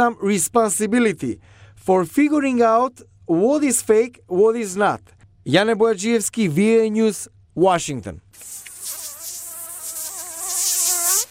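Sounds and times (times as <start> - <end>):
speech: 0.0 - 8.6
mosquito whining in flight: 8.4 - 11.2.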